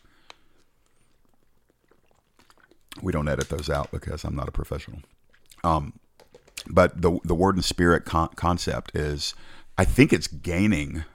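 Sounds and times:
sipping water: 0.0 - 6.8
faint hiss: 0.0 - 11.1
soft swallow: 0.5 - 3.2, 5.1 - 5.7
speech: 3.0 - 6.0, 6.7 - 11.1.

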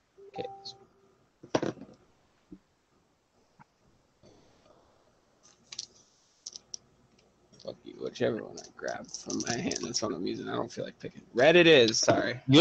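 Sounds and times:
speech: 0.4 - 0.8, 8.2 - 12.5
dice clattering and rattling: 8.6 - 10.0.

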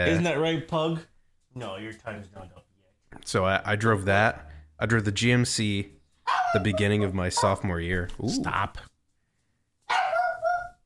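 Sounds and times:
speech: 0.0 - 2.6, 3.2 - 8.9
small dog barking: 6.2 - 6.8, 9.9 - 10.8.

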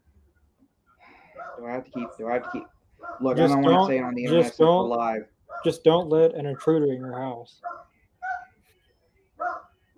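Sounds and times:
dog barking: 1.3 - 3.4, 5.5 - 5.8, 6.5 - 6.8, 7.6 - 8.6, 9.4 - 9.9
speech: 1.6 - 7.8.

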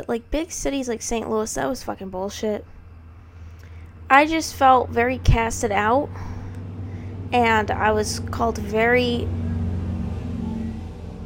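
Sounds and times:
speech: 0.0 - 2.8, 4.1 - 6.3, 7.3 - 9.4
motorcycles revving and passing by: 4.1 - 11.2.

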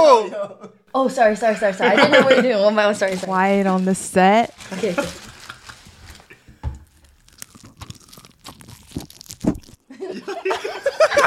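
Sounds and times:
laughter: 0.2 - 2.7, 4.6 - 5.9, 9.9 - 11.2
speech: 0.2 - 5.3
rustling: 2.7 - 9.8
chewing: 4.6 - 9.9
crunching of someone biting into a crispy fried chicken wing: 6.8 - 9.9.

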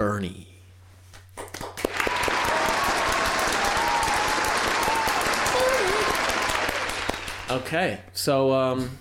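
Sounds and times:
speech: 0.1 - 0.5, 7.5 - 8.9
crowd applauding: 1.4 - 7.7.

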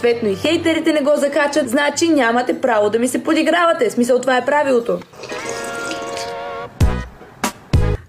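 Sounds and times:
speech: 0.0 - 5.5
ringing liquid tone of drinking water: 5.2 - 6.6.

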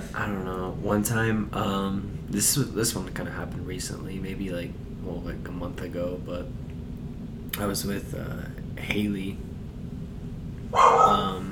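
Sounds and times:
low hum: 0.0 - 11.4
speech: 0.2 - 6.7, 7.5 - 9.5
dog barking: 10.7 - 11.4.

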